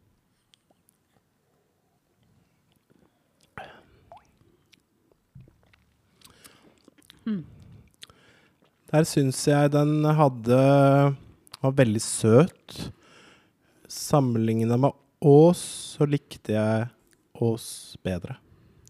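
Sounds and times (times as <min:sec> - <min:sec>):
sips and wet mouth sounds as people taste a Christmas soda: 0:02.7 - 0:08.9
speech: 0:07.3 - 0:07.5, 0:08.9 - 0:13.0, 0:13.9 - 0:18.4.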